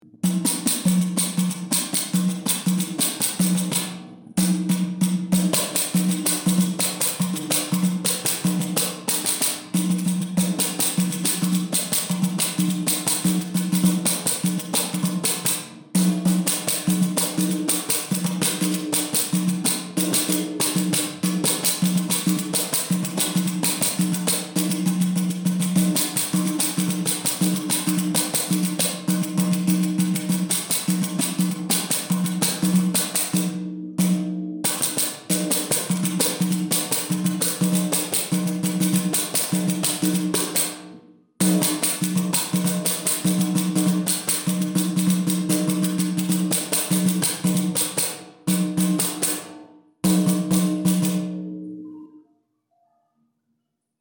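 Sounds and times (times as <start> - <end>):
instrumental pot pourri: 0.0 - 53.9.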